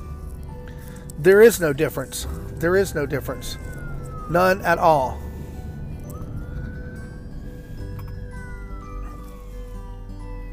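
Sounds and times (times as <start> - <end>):
traffic rumble: 0.0 - 10.5
speech: 1.2 - 3.7, 4.3 - 5.2
police car siren wailing as the car passes: 1.6 - 9.9.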